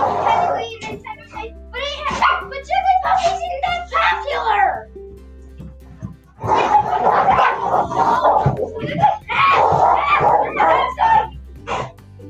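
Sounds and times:
dogs fighting, snarling and growling: 0:00.0 - 0:01.0, 0:02.1 - 0:02.5, 0:06.0 - 0:12.0
dogs barking while fighting: 0:00.0 - 0:04.6, 0:05.8 - 0:12.0.

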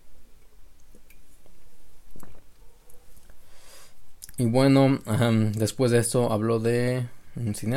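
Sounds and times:
quiet sipping from a drink: 0:00.8 - 0:02.6
swallow-like gulp: 0:02.1 - 0:02.6
speech: 0:04.4 - 0:07.7.

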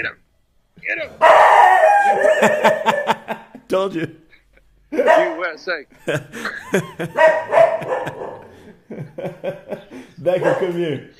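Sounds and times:
speech: 0:00.0 - 0:00.2, 0:00.8 - 0:04.2, 0:04.9 - 0:11.1
dog giving short yips: 0:01.2 - 0:03.2, 0:05.0 - 0:05.4, 0:07.2 - 0:08.4, 0:10.4 - 0:10.8
dog barking at a passing cyclist: 0:01.2 - 0:03.3, 0:05.0 - 0:05.4, 0:07.1 - 0:08.7, 0:10.3 - 0:11.0
laughter: 0:02.0 - 0:11.0.

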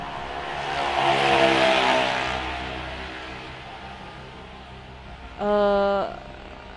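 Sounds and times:
motorcycle engine passing on a roadside: 0:00.0 - 0:05.2.

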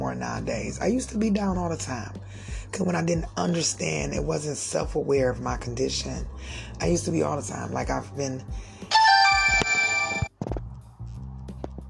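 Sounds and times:
speech: 0:00.1 - 0:09.0
loud bright multi-tone phone ringtone: 0:08.9 - 0:10.3.

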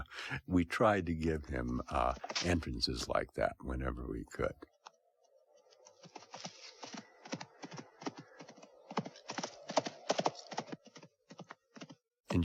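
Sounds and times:
speech: 0:00.1 - 0:04.7
horse hooves clip-clopping: 0:05.7 - 0:12.1.

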